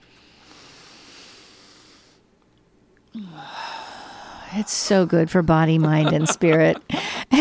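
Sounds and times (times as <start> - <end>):
deep breath: 0.0 - 2.3, 3.1 - 4.8
speech: 3.2 - 3.6, 4.5 - 7.3
laughter: 5.6 - 7.3.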